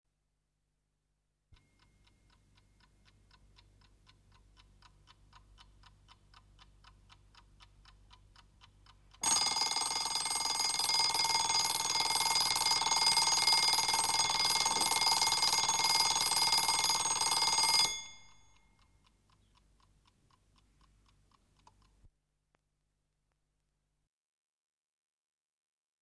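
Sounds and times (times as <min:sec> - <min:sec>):
table alarm clock: 0:09.2 - 0:19.0.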